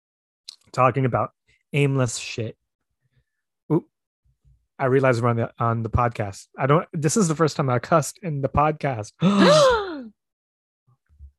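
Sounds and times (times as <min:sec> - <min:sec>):
speech: 0:00.8 - 0:02.6, 0:03.7 - 0:03.9, 0:04.8 - 0:09.8
person gasping: 0:09.2 - 0:10.1.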